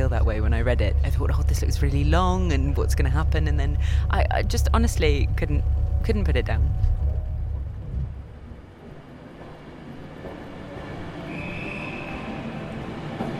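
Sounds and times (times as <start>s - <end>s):
train rumbling along a railway track: 0.0s - 13.3s
speech: 0.2s - 6.9s.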